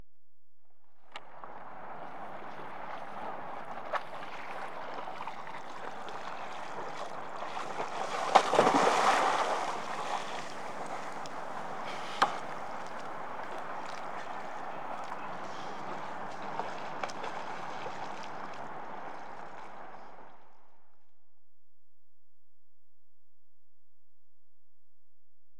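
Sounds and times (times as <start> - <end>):
boat capsizing recorded from a nearby boat: 1.1 - 20.9.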